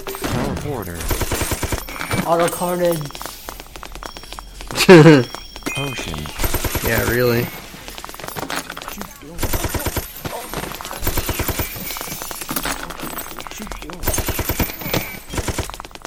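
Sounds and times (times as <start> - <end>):
machine gun firing in a video game: 0.0 - 2.5, 6.2 - 13.0, 13.7 - 16.0
video game sounds: 0.0 - 16.0
speech: 0.7 - 1.4, 2.3 - 3.3, 4.9 - 7.6.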